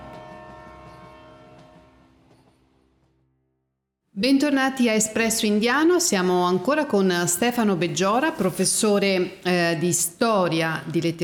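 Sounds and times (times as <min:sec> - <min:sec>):
departing train horn-like harmonic tone: 0:00.0 - 0:02.6
speech: 0:04.2 - 0:11.2.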